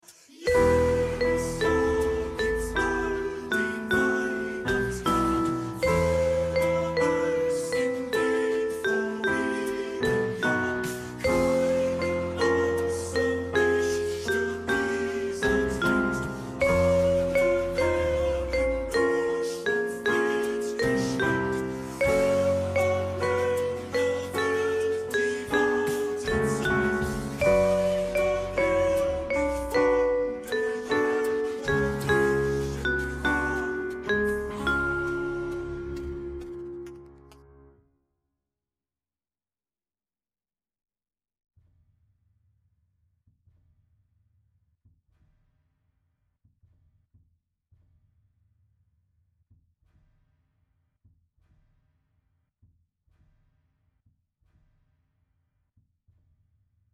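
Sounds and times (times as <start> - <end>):
soprano bridge in E minor: 0.3 - 36.6.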